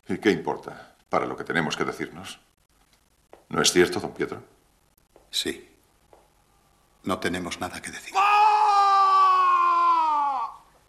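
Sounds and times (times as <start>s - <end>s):
speech: 0.1s - 2.5s, 3.5s - 4.6s, 5.3s - 5.7s, 7.0s - 8.2s
person screaming: 8.1s - 10.7s.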